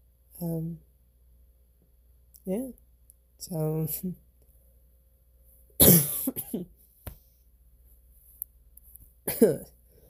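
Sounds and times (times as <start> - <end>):
speech: 2.4 - 2.8, 3.4 - 4.2, 6.0 - 6.8, 9.3 - 9.8
harsh coughing from a person with a cold or allergies: 5.8 - 6.7, 9.3 - 9.7.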